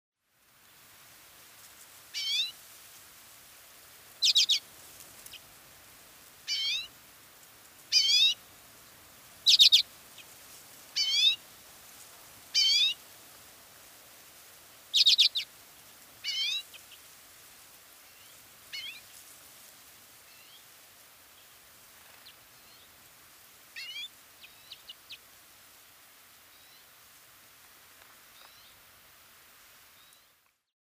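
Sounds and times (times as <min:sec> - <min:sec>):
Common redpoll Acanthis flammea calling: 0:02.1 - 0:02.5, 0:04.2 - 0:04.6, 0:06.5 - 0:06.9, 0:07.9 - 0:08.4, 0:09.4 - 0:10.3, 0:11.0 - 0:11.4, 0:12.5 - 0:13.0, 0:14.9 - 0:15.5, 0:16.2 - 0:17.0, 0:18.2 - 0:19.0, 0:23.8 - 0:25.2.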